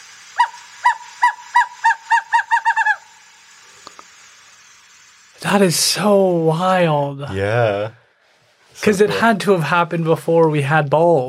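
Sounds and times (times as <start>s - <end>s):
Western Screech Owl hooting: 0.2s - 3.4s
speech: 5.5s - 8.0s, 8.8s - 11.2s.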